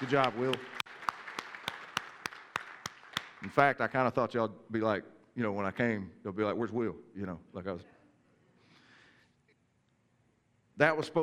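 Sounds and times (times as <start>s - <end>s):
speech: 0.0s - 0.8s, 3.4s - 8.0s, 10.8s - 11.2s
audience applauding with steady soft claps: 0.0s - 3.6s.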